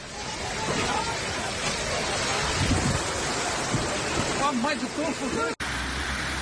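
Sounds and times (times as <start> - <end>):
faint indistinct voices: 0.0 - 4.4
heavy rain pouring during a thunderstorm: 0.0 - 6.4.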